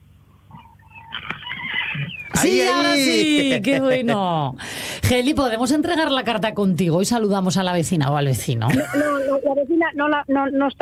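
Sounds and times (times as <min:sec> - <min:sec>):
horse neighing: 0:01.1 - 0:03.0
laughter: 0:01.1 - 0:04.6, 0:08.7 - 0:09.4
speech: 0:02.0 - 0:10.8.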